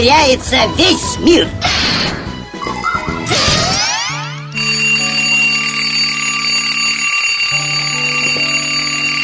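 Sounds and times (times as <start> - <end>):
speech: 0.0 - 2.2
alarm clock ringing with a shrill steady tone: 2.6 - 9.2.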